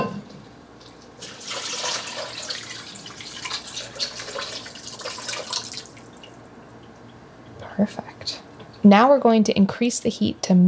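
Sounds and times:
water pouring into a cooking pot of pasta: 1.2s - 7.2s
speech: 7.8s - 8.1s, 8.8s - 10.6s.

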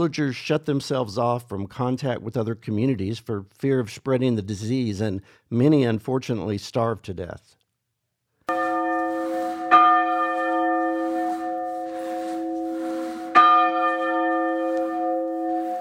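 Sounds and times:
speech: 0.0s - 7.6s
church bell ringing inside an ancient village church: 8.5s - 15.7s.

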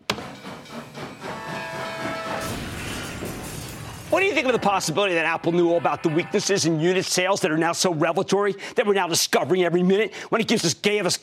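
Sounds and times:
speeding freight train passing: 0.1s - 7.0s
speech: 4.1s - 11.2s.

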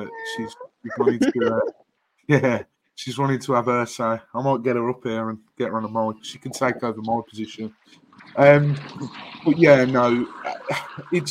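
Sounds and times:
cat meowing: 0.0s - 1.7s
laughter: 0.0s - 1.7s, 2.3s - 2.6s, 6.3s - 7.3s, 9.8s - 11.2s
speech: 0.0s - 11.2s.

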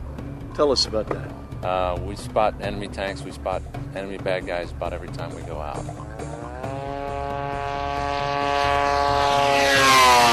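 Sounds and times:
speech: 0.6s - 6.4s
propeller drone small two-stroke snowmobile engine buzzing: 2.2s - 10.3s.

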